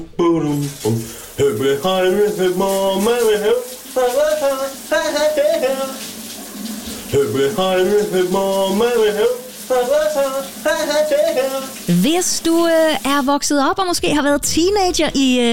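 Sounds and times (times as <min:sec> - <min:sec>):
man singing a 1980s hit song loudly: 0:00.0 - 0:06.0, 0:07.1 - 0:11.8
speech: 0:00.0 - 0:06.1, 0:07.1 - 0:15.5
shower running with spraying water: 0:00.4 - 0:14.2.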